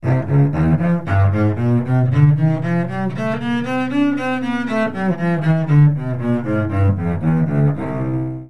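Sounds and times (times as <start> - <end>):
cello playing fast up and down scales: 0.0 - 8.4.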